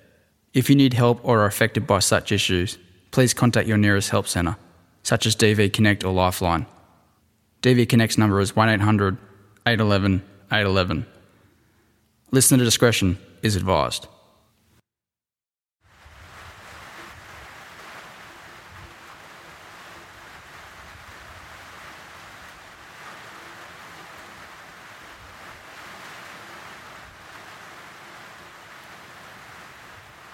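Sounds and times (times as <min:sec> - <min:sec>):
speech: 0:00.5 - 0:06.8, 0:07.6 - 0:11.2, 0:12.3 - 0:14.2
heavy rain in Woolvi: 0:15.8 - 0:30.3.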